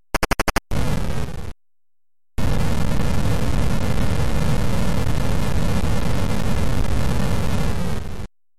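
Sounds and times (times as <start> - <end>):
rapid clicks: 0.0 - 0.8
short burst of static: 0.1 - 1.6, 2.4 - 8.3.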